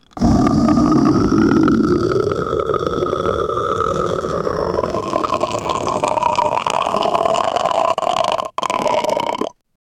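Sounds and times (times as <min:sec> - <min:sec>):
latex growl: 0:00.0 - 0:09.5.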